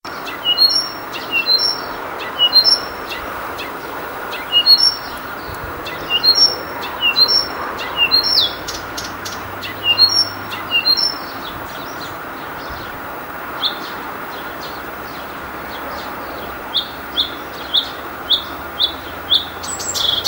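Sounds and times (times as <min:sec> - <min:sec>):
bush warbler singing in Halland: 0:00.1 - 0:13.0, 0:13.6 - 0:20.2.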